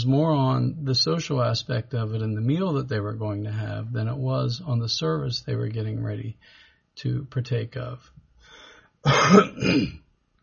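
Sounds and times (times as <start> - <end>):
speech: 0.0 - 8.2, 9.0 - 10.0
wet phlegmy cough: 9.1 - 10.0.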